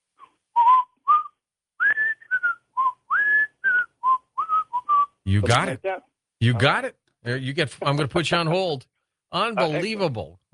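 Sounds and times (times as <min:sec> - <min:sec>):
person whistling a bouncy TV theme tune: 0:00.5 - 0:05.2
speech: 0:05.3 - 0:10.5.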